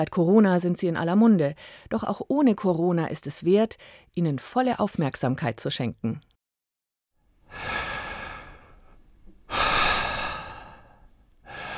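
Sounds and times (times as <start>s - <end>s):
speech: 0.0s - 6.3s, 7.5s - 7.9s
deep airy inhalations: 7.5s - 11.7s.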